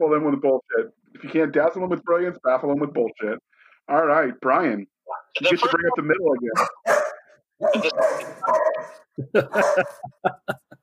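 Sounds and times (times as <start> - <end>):
speech: 0.0 - 10.7
dog barking and yelping: 6.6 - 10.0
laughter: 9.2 - 10.8.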